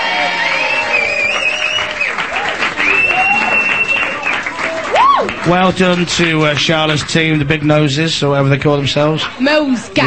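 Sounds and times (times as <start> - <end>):
studio audience whoops: 0.0 - 5.4
studio audience clapping: 0.0 - 8.1
studio audience whistles: 0.5 - 4.5
speech: 5.5 - 10.0.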